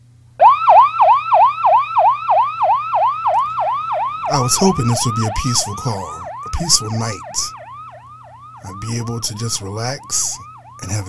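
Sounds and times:
ambulance siren yelping on a code 3 emergency call: 0:00.4 - 0:11.0
low ambulance engine rumble: 0:04.1 - 0:11.0
speech: 0:04.4 - 0:07.6, 0:08.6 - 0:11.0.

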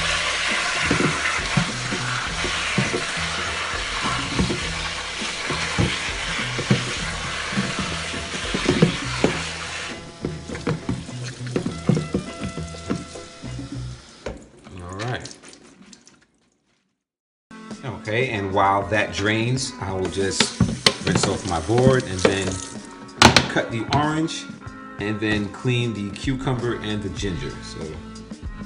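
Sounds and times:
cold tap water pouring over a head of lettuce: 0:00.0 - 0:16.6, 0:20.0 - 0:22.9
speech: 0:18.2 - 0:22.8, 0:23.6 - 0:28.1.

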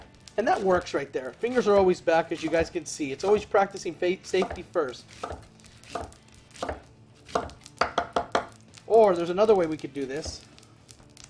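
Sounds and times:
speech: 0:00.4 - 0:06.7, 0:08.9 - 0:10.5
knife chopping vegetables into julienne strips on a board: 0:00.6 - 0:03.6, 0:04.4 - 0:08.6.

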